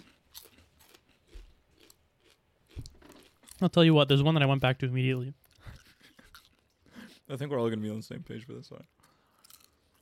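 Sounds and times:
crunching of a crisp potato snack: 0.0s - 3.9s, 9.2s - 9.9s
speech: 3.6s - 5.4s, 7.3s - 9.0s.

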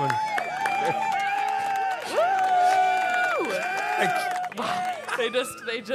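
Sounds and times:
crowd cheering and whooping: 0.0s - 5.9s
speech: 5.2s - 5.9s.

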